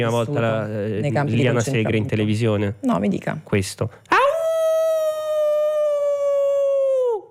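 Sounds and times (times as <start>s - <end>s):
speech: 0.0s - 4.2s
person imitating a howl: 4.1s - 7.2s.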